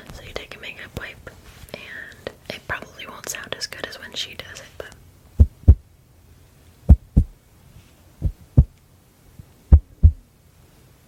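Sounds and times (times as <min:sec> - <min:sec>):
heartbeat-like thumping produced as an ASMR trigger: 0:05.4 - 0:05.9, 0:06.9 - 0:07.4, 0:08.2 - 0:08.8, 0:09.7 - 0:10.2.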